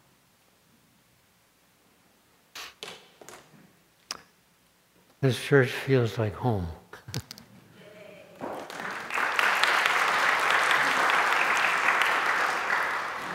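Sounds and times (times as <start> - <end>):
speech: 5.2 - 7.2
audience clapping: 8.4 - 13.3.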